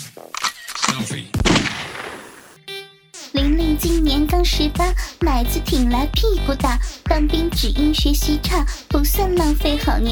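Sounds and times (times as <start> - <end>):
rifles fired together in a volley during a military squad drill: 0.8 - 2.6
short bursts of noise: 1.6 - 2.6
speech: 3.4 - 10.0.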